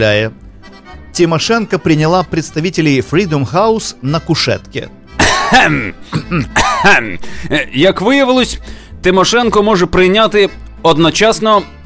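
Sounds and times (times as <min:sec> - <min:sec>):
speech: 0:00.0 - 0:00.4, 0:01.2 - 0:11.8
throat clearing in rough rasping bursts: 0:05.2 - 0:07.2.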